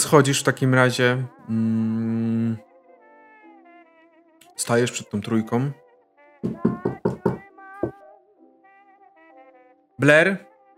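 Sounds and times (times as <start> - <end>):
speech: 0.0 - 2.7, 4.6 - 5.8, 6.4 - 7.0, 10.0 - 10.7
knocking on a neighbour's door: 6.4 - 8.0.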